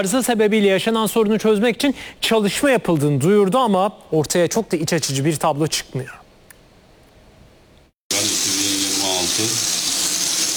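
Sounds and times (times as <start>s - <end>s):
speech: 0.0s - 6.2s
muddy water gushing from a household tap: 8.1s - 10.5s.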